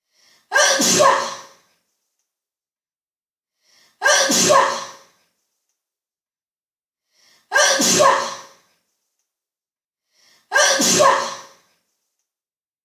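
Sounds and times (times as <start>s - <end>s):
person sneezing: 0.5s - 1.5s, 4.0s - 5.0s, 7.6s - 8.5s, 10.6s - 11.6s.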